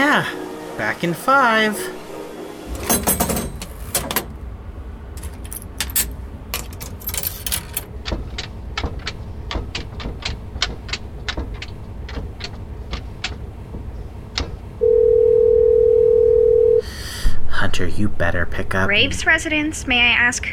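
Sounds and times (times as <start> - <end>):
speech: 0.0 - 2.0, 17.8 - 20.5
payphone handling clatter: 2.8 - 4.4, 5.2 - 8.0
loud continuous payphone tone: 14.8 - 16.8.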